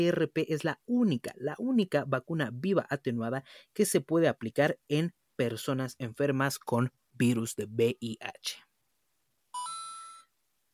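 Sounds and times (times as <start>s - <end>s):
speech: 0.0s - 8.6s
electronic doorbell chime: 9.5s - 10.3s.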